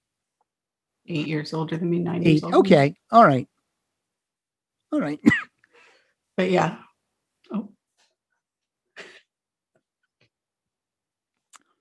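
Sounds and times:
speech: 1.0s - 3.5s, 4.9s - 5.4s, 6.4s - 6.8s, 7.5s - 7.8s
person coughing: 5.2s - 5.6s
breathing: 5.6s - 6.2s
person inhaling: 5.7s - 6.2s.

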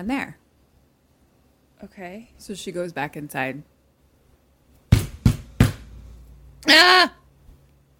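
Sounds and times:
speech: 0.0s - 0.4s, 1.8s - 3.7s, 6.6s - 7.2s
loud sharp knocks on a hard surface: 4.9s - 6.0s.

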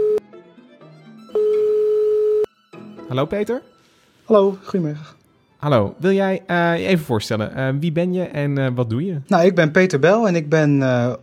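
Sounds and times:
telephone call tones while phoning someone: 0.0s - 0.2s, 1.3s - 2.5s
speech: 3.1s - 11.2s.

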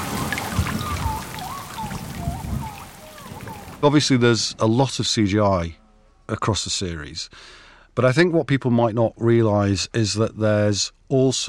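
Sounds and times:
deep rolling thunder: 0.0s - 3.8s
torrential rain: 0.0s - 3.9s
speech: 3.8s - 11.4s.

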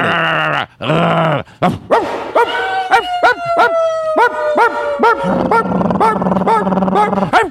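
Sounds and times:
band members voicing mock dog barks and yelps: 0.0s - 7.4s
drawn-out howl-like whine: 2.4s - 6.2s.

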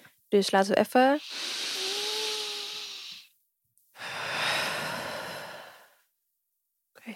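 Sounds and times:
speech: 0.3s - 1.6s
deep breathing exercise, inhaling and exhaling close to the mic: 1.2s - 3.3s, 4.0s - 6.1s.

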